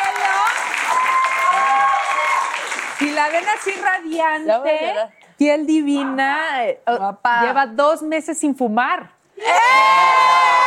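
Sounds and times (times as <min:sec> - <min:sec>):
audience cheering voices: 0:00.0 - 0:03.6, 0:09.4 - 0:10.6
audience applause: 0:00.0 - 0:04.0
speech: 0:03.0 - 0:10.6.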